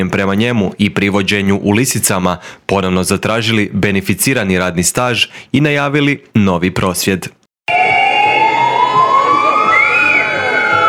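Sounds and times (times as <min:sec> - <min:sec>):
speech: 0:00.0 - 0:07.4
ambulance sirens sounding in protest outside a prison in Zagreb: 0:07.7 - 0:10.8.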